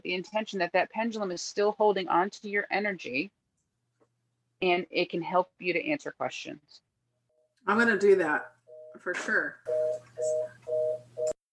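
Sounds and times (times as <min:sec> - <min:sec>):
speech: 0:00.0 - 0:03.4, 0:04.6 - 0:06.8, 0:07.6 - 0:10.5
telephone busy signal: 0:09.7 - 0:11.4.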